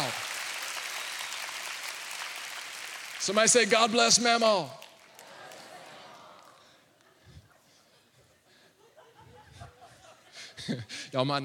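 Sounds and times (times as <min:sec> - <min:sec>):
congregation clapping hands: 0:00.0 - 0:06.8
speech: 0:03.2 - 0:04.8, 0:10.7 - 0:11.4
laughter: 0:05.1 - 0:11.0.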